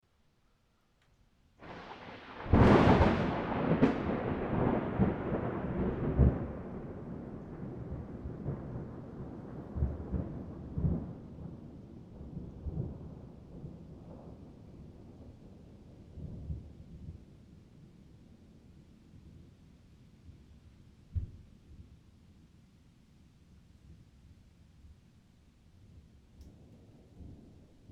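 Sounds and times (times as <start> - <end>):
thunderstorm: 1.6 - 19.6, 26.4 - 27.9.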